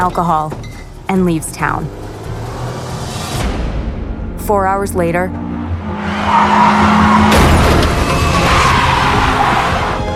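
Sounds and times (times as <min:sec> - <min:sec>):
speech: 0:00.0 - 0:02.1, 0:04.5 - 0:05.4, 0:06.1 - 0:07.8
car tires skidding with a screech: 0:05.9 - 0:10.1
car crash: 0:06.0 - 0:10.0.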